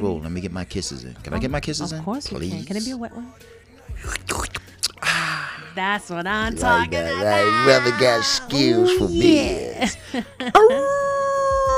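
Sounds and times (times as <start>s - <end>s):
speech: 0.0s - 4.3s, 5.8s - 11.0s
dog howling like a wolf: 7.1s - 9.5s, 10.6s - 11.7s.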